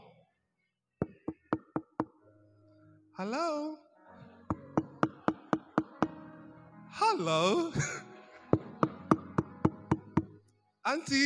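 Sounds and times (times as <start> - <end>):
knocking on a door: 1.0 - 2.1, 4.5 - 6.1, 8.6 - 10.3
speech: 3.2 - 3.8, 7.0 - 8.1, 10.9 - 11.2
laughter: 4.4 - 6.5, 7.1 - 9.3.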